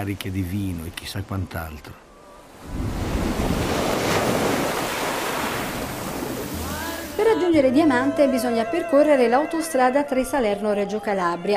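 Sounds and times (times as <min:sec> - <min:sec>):
speech: 0:00.0 - 0:03.6, 0:07.5 - 0:11.5
sea waves breaking on the shore at Diamante on the Tyrrhenian coast of Calabria, Italy: 0:02.1 - 0:07.2.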